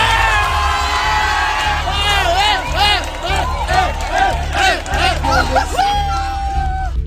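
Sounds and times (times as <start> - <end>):
laughter: 0.0 - 6.8
high-pitched shouts and whoops: 0.0 - 7.0
large crowd roaring and cheering: 0.0 - 7.0.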